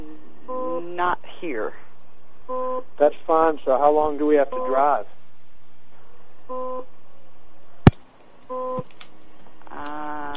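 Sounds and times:
steady low hum: 0:00.0 - 0:10.3
short electronic beeps: 0:00.5 - 0:00.9, 0:02.5 - 0:02.9, 0:04.5 - 0:04.8, 0:06.5 - 0:06.9, 0:08.5 - 0:08.8
speech: 0:01.0 - 0:01.9, 0:02.5 - 0:05.2, 0:06.5 - 0:06.9.

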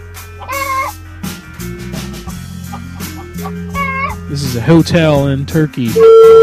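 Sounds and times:
chicken drawn-out squawking call: 0:00.3 - 0:01.0, 0:02.3 - 0:04.3, 0:06.0 - 0:06.4
chicken clucking: 0:00.4 - 0:01.0, 0:02.3 - 0:04.2
speech: 0:04.3 - 0:06.4.

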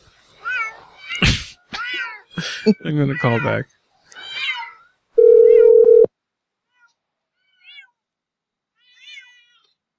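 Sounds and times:
cats meowing inside a house: 0:00.4 - 0:02.4, 0:03.0 - 0:06.1, 0:06.7 - 0:08.0, 0:08.8 - 0:09.8
speech: 0:02.6 - 0:03.8.

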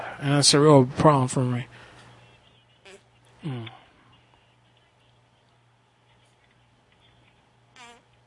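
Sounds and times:
speech: 0:00.2 - 0:01.8, 0:03.4 - 0:03.8
squelchy armpit fart noises made with coarse armpit hair: 0:07.8 - 0:08.0.

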